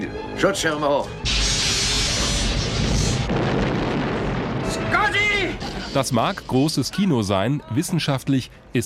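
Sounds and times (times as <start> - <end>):
speech: 0.0 - 1.4, 5.1 - 8.8
sci-fi spaceship battle explosion: 1.2 - 6.8.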